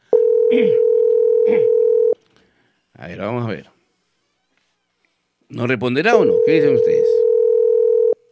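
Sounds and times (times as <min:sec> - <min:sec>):
telephone line tone from an unanswered call: 0:00.1 - 0:02.2, 0:06.1 - 0:08.3
speech: 0:00.5 - 0:01.8, 0:03.0 - 0:03.8, 0:05.5 - 0:07.2.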